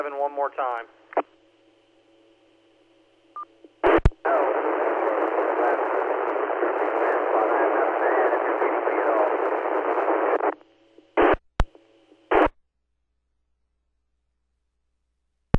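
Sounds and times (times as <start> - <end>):
speech: 0.0 - 1.1
weak radio transmission static hiss: 0.0 - 1.3, 3.4 - 12.5.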